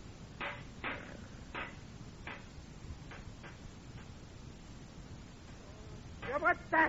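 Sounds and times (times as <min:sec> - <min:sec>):
rock banging against a bent metal grill grate for a fire: 0:00.0 - 0:04.2, 0:06.2 - 0:06.6
steady hiss: 0:00.0 - 0:06.8
speech: 0:06.4 - 0:06.8.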